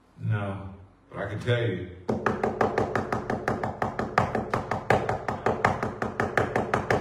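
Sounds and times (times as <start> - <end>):
speech: 0.4 - 2.3
rapid insistent knocking on a front door: 2.1 - 6.9.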